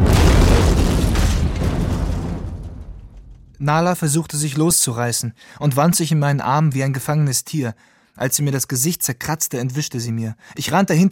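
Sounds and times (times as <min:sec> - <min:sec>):
bomb explosion shaking a house: 0:00.0 - 0:03.7
speech: 0:03.6 - 0:11.1.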